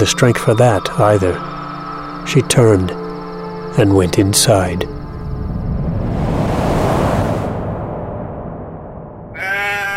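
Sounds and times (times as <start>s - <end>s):
speech: 0.0s - 1.5s, 2.3s - 3.0s, 3.8s - 5.0s
wind or surf noise: 5.0s - 9.7s
sheep bleating: 9.4s - 9.9s.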